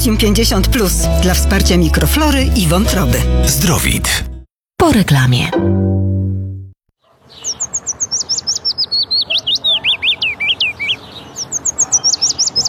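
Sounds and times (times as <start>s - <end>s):
speech: 0.0s - 6.1s
willow warbler singing: 7.2s - 12.6s.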